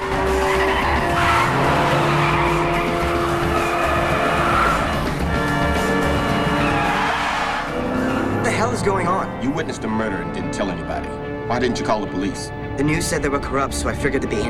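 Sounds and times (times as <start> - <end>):
car tires squealing and skidding: 0.0 - 11.2
car engine roaring while accelerating hard: 0.0 - 11.4
speech: 9.6 - 14.4.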